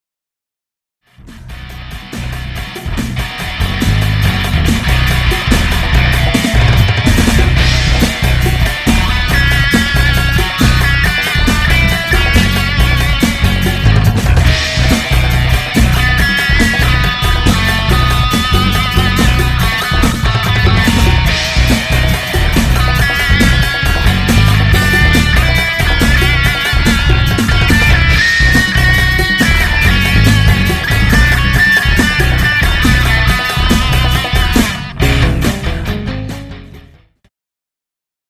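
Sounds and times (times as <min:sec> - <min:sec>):
guitar solo: 0:01.5 - 0:37.0.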